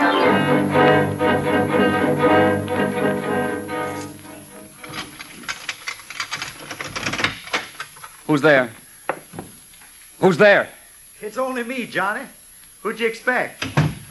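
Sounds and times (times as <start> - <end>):
steady music: 0.0 - 5.2
typewriter keys clacking: 4.8 - 7.9
speech: 8.3 - 8.8, 10.2 - 13.8.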